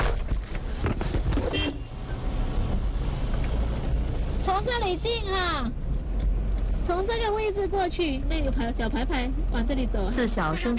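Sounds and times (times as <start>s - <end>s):
car engine rumble while driving: 0.0s - 10.7s
speech: 4.6s - 5.8s, 6.9s - 10.7s.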